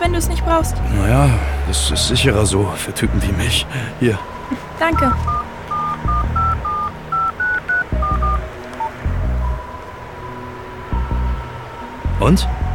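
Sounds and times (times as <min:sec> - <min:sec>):
speech: 0:00.2 - 0:05.4, 0:12.2 - 0:12.6
mobile phone keypad dialing beeps: 0:04.9 - 0:09.0.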